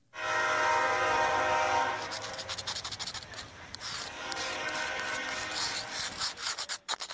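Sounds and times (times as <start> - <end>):
freight train horn blaring: 0.0 - 2.5, 3.3 - 6.2.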